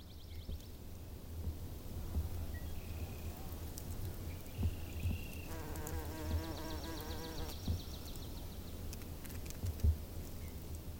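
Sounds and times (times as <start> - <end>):
faint outdoor ambience: 0.0 - 10.9
bees buzzing: 5.5 - 7.5.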